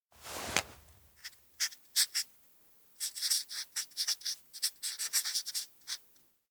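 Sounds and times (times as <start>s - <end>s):
pen writing kanji on a forehead: 1.2s - 2.3s, 3.0s - 6.0s.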